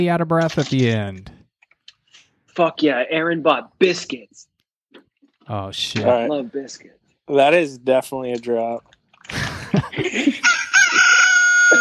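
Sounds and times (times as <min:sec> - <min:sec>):
speech: 0:00.0 - 0:01.4, 0:02.6 - 0:04.5, 0:05.5 - 0:10.5
laughter: 0:09.3 - 0:11.8
rooster crowing: 0:10.4 - 0:11.8.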